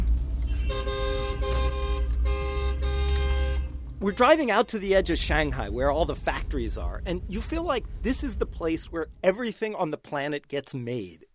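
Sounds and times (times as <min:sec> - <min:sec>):
busy road traffic in Shanghai heard while driving: 0:00.0 - 0:06.1
steady low engine rumble heard while driving: 0:00.0 - 0:09.4
car horns blaring: 0:00.4 - 0:05.6
speech: 0:04.0 - 0:11.3.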